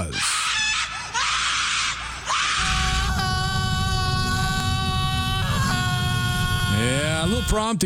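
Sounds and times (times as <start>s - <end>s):
several people screaming: 0.0s - 7.8s
low rumbling background: 2.6s - 7.6s
speech: 7.3s - 7.8s.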